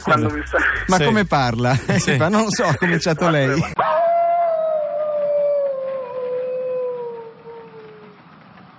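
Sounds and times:
laughter: 0.0 - 3.8
speech: 0.0 - 4.0
wolf howling: 3.8 - 8.2.

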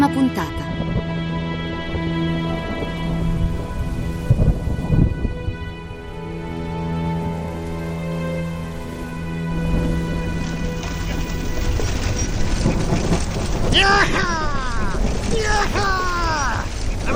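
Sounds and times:
constant low tonal hum: 0.0 - 13.7
speech: 0.1 - 0.8
deep rumble of thunder: 0.6 - 17.1
steady heavy rain: 0.7 - 17.1.

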